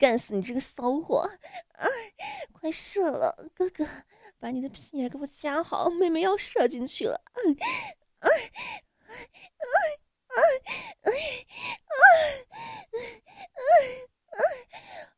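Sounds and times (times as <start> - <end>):
speech: 0.0 - 15.1
soft panting breaths with faint breathy moans: 1.4 - 2.6, 7.6 - 9.6, 10.6 - 15.1.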